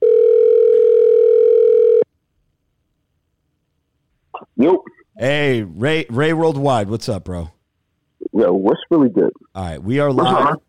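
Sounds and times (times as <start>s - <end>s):
telephone ringing tone while placing a call: 0.0s - 2.0s
speech: 4.6s - 7.6s, 8.4s - 10.6s.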